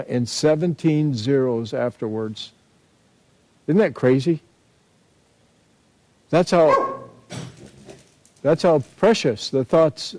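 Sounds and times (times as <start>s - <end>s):
speech: 0.0s - 2.6s, 3.7s - 4.5s, 6.3s - 6.8s, 8.4s - 10.1s
dog barking: 6.6s - 7.2s
dog yelping: 6.7s - 7.4s.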